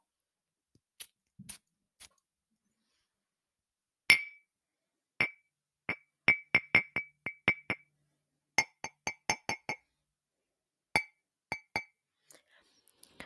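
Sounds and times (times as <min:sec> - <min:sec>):
glass perfume bottles tapped together: 0:04.1 - 0:04.4, 0:05.2 - 0:07.9, 0:08.6 - 0:09.8, 0:11.0 - 0:12.0.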